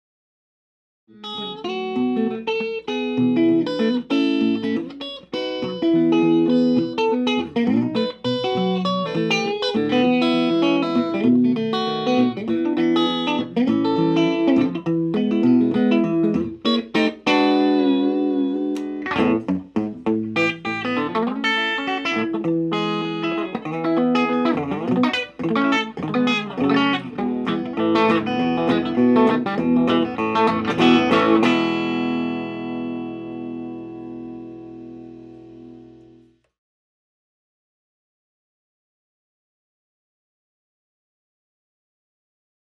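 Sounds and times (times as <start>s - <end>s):
Gretsch G6120SSU Nashville electric guitar: 1.1s - 36.5s.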